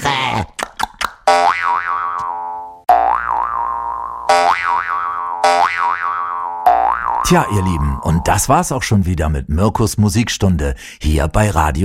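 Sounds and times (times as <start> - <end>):
cartoon boing effects played on a jaw harp for someone hopping: 1.3 - 8.4
speech: 7.3 - 11.8.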